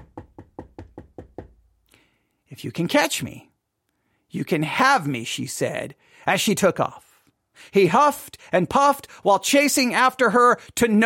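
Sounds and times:
knocking on a door: 0.0 - 1.6
speech: 2.5 - 3.5, 4.3 - 7.0, 7.6 - 11.0.

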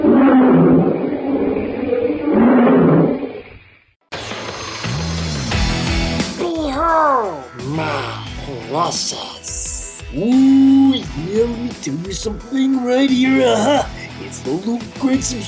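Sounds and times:
big cat roaring in the jungle night: 0.0 - 3.4
music: 4.1 - 15.4
speech: 11.8 - 15.4.

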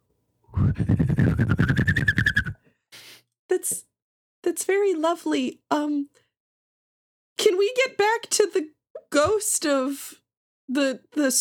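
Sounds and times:
person whistling a warbling bird-like call into a microphone: 0.6 - 2.6
speech: 5.0 - 6.2, 7.4 - 11.4.

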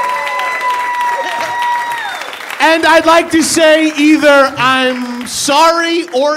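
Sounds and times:
faint cheer: 0.0 - 2.6
live audience crowd applauding: 0.0 - 6.3
speech: 2.6 - 6.3.

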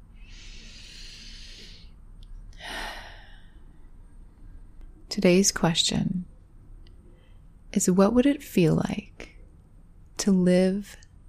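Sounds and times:
deep breath during a guided meditation: 0.2 - 2.0, 2.6 - 4.0
speech: 5.2 - 6.3, 7.7 - 9.2, 10.2 - 11.0.

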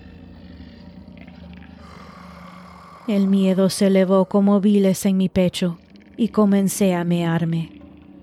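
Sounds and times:
deep guttural growl: 0.0 - 6.2
speech: 3.1 - 7.8.

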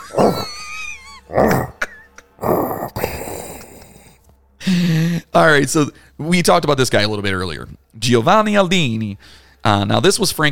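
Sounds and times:
person imitating a dog's growl: 0.0 - 0.6, 1.3 - 4.2
speech: 0.1 - 0.6, 5.4 - 10.4.

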